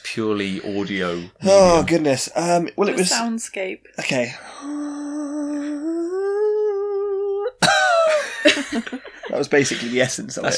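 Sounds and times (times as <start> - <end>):
speech: 0.2 - 4.8, 8.9 - 10.5
long steady droning vocal tone: 4.5 - 7.6
loud rough cough: 7.6 - 8.3
laughter: 7.6 - 10.5.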